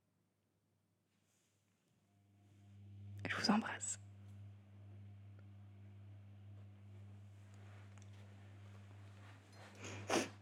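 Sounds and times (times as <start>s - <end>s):
faint steady electrical hum: 1.0s - 10.3s
speech: 3.3s - 4.0s
short breathy nasal sniff: 9.8s - 10.3s.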